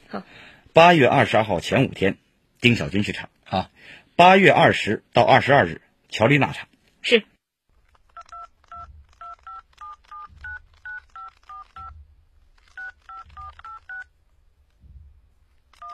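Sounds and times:
speech: 0.1s - 7.3s
telephone keypad dialing tones: 8.2s - 11.9s, 12.8s - 14.1s, 15.8s - 15.9s
soft low thuds: 8.4s - 11.0s, 11.8s - 15.7s.

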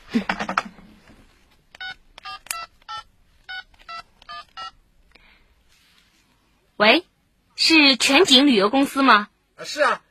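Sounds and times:
telephone keypad dialing beeps: 1.8s - 4.8s
speech: 6.8s - 7.1s, 7.7s - 10.0s.

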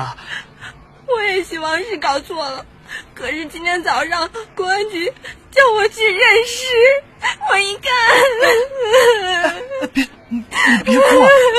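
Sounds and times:
speech: 0.0s - 0.2s, 1.3s - 11.5s
person crying in loud wavering sobs and wails: 7.2s - 11.5s.

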